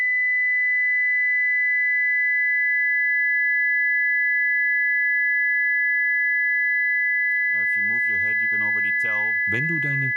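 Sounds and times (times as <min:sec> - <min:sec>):
two simultaneous high-pitched sine wave tones: 0:00.0 - 0:10.1
speech: 0:07.8 - 0:10.1.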